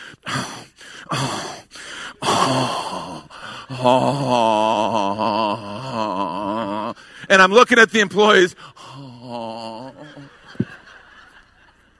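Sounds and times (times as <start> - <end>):
person imitating labored breathing with gasps and a wheeze: 0.0 - 7.3, 8.6 - 10.4
speech: 3.8 - 4.6, 7.4 - 8.7
laughter: 9.2 - 11.9.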